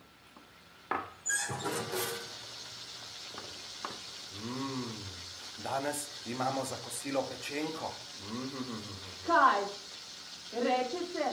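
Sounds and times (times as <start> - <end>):
sizzling hiss: 0.0 - 11.3
pots and pans clattering: 1.2 - 4.3
speech: 5.7 - 9.8, 10.5 - 11.3.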